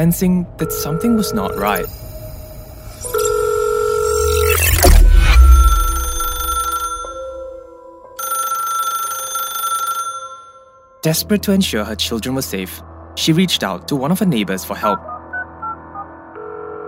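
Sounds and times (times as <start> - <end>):
speech: 0.0 - 2.1, 11.0 - 15.2
telephone ringing with electronic tones: 0.6 - 1.9, 3.0 - 7.6, 8.2 - 10.7.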